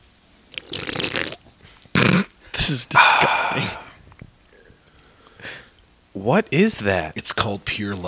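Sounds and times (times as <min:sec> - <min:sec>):
slurping sip from a can: 0:00.5 - 0:01.4
speech: 0:02.6 - 0:03.8, 0:06.2 - 0:08.0.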